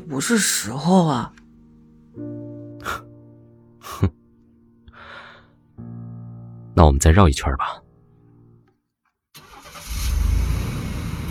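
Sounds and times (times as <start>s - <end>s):
speech: 0.1s - 1.4s, 2.2s - 3.1s, 3.9s - 4.2s, 6.8s - 7.8s
car engine as the driver presses the accelerator: 9.4s - 11.2s.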